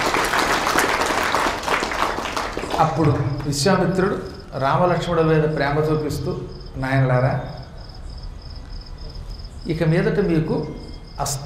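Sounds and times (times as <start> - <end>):
audience applause at a spiritual storytelling discourse: 0.0 - 3.6
speech: 2.8 - 7.6, 9.6 - 11.4.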